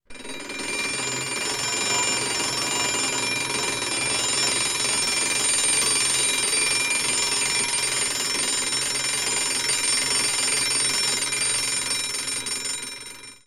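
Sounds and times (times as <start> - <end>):
classic alarm clock bell: 0.1 - 13.4.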